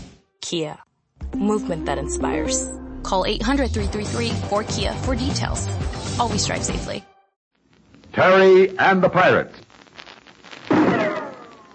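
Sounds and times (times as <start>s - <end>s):
speech: 0.5s - 7.1s, 8.2s - 9.6s
rifle shot: 10.7s - 11.7s.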